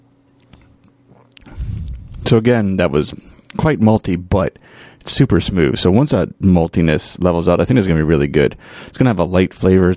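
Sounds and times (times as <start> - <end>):
low steady hum: 0.0 - 9.9
person sipping and swallowing beer: 0.4 - 2.2
speech: 2.3 - 9.9.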